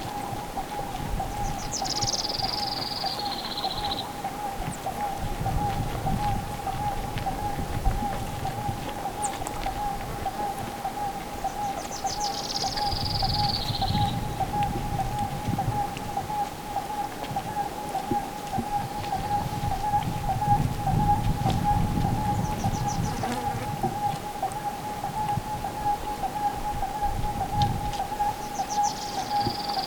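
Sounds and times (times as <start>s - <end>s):
bird calling at the shore of a lake in Sud Lipez Bolivia: 0.0s - 29.8s.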